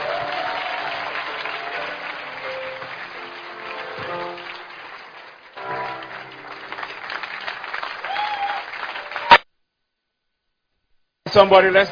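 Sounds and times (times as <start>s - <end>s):
audience applauding for their pastor: 0.0s - 9.4s
speech: 11.3s - 11.9s.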